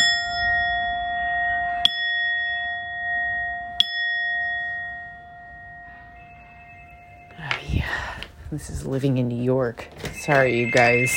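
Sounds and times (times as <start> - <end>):
chime ringing with a sustained tone: 0.0 - 8.0, 10.0 - 11.1
speech: 8.5 - 11.1
sharp taps striking a chime: 10.1 - 11.1.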